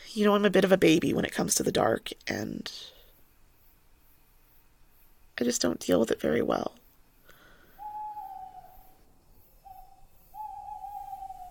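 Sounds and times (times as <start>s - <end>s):
faint hiss: 0.0s - 11.5s
speech: 0.2s - 2.9s, 5.4s - 6.8s
owls hooting in the woods at night: 7.5s - 11.5s.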